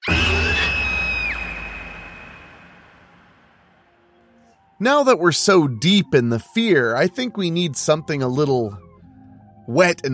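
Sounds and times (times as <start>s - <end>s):
woman screaming long, loud and high-pitched: 0.0s - 1.7s
speech: 4.8s - 8.8s, 9.7s - 10.1s.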